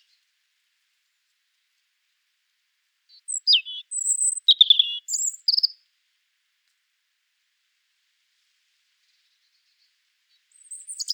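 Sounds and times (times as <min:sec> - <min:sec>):
European robin Erithacus rubecula song: 0:03.2 - 0:05.7.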